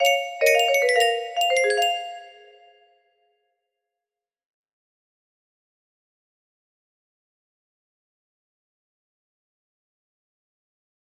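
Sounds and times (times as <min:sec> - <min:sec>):
music box melody: 0:00.0 - 0:02.8
chime intro: 0:00.0 - 0:03.0.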